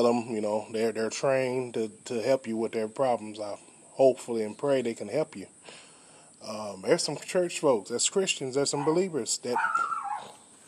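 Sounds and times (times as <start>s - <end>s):
speech: 0.0s - 5.8s, 6.4s - 10.3s
dog whimpering and yipping: 8.8s - 10.4s.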